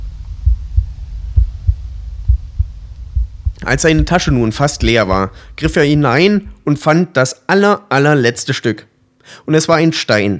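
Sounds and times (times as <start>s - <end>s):
heartbeat thumping: 0.0s - 6.7s
faint hum: 0.0s - 10.3s
speech: 3.6s - 10.3s.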